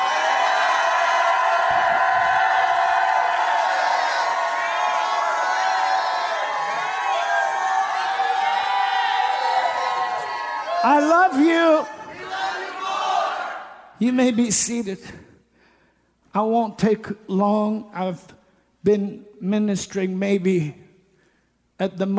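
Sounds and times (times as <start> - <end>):
large crowd shouting and cheering: 0.0 - 13.9
speech: 11.1 - 11.9, 14.0 - 15.3, 16.4 - 20.8, 21.8 - 22.1.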